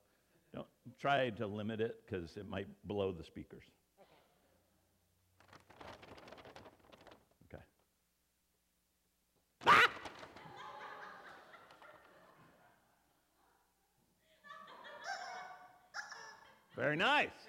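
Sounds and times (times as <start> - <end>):
speech: 1.0 - 3.8, 16.9 - 17.4
chicken squawking: 9.6 - 10.2
laughter: 9.6 - 17.0.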